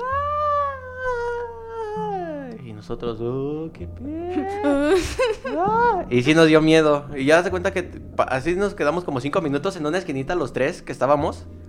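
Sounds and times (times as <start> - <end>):
person's voice imitating an anguished heart-rending scream: 0.0 - 2.6, 4.0 - 4.9, 5.6 - 6.1
speech: 2.9 - 11.6
laughter: 4.1 - 6.0.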